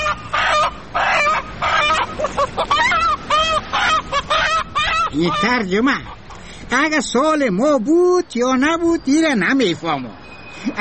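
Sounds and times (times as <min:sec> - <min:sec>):
chicken clucking: 0:00.0 - 0:06.5
speech: 0:05.2 - 0:10.7.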